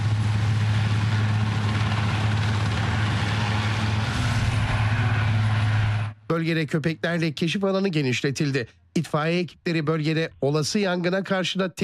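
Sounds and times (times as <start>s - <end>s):
rescue helicopter flying over an aircraft crash site: 0.0s - 7.3s
speech: 6.3s - 11.8s.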